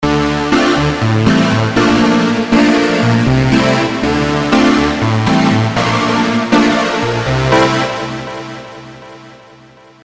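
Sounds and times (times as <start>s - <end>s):
chords playing: 0.0s - 9.1s.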